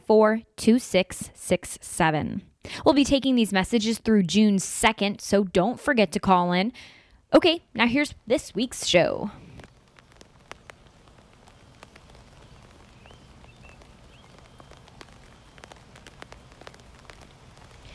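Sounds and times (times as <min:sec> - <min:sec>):
speech: 0:00.1 - 0:09.4
steady rain falling: 0:07.8 - 0:17.9
faint bird chirps: 0:11.1 - 0:16.8.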